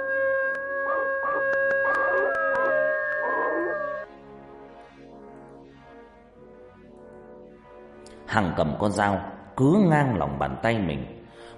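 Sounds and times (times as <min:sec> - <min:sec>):
dog-like zombie creature howling eerily: 0:00.0 - 0:04.0
speech: 0:08.3 - 0:11.2.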